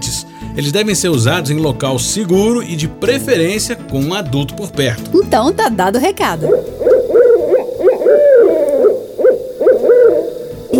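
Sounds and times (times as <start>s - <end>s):
speech: 0.2s - 6.9s
spectacled owl hooting at night: 6.4s - 10.7s.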